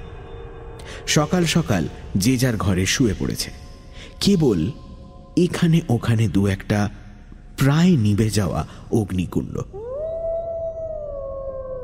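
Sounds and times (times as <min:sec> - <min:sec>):
low rumbling background: 0:00.0 - 0:11.8
speech: 0:01.0 - 0:03.6, 0:04.2 - 0:04.8, 0:05.4 - 0:07.0, 0:07.6 - 0:09.8
jackal howling in the distance: 0:09.7 - 0:11.8.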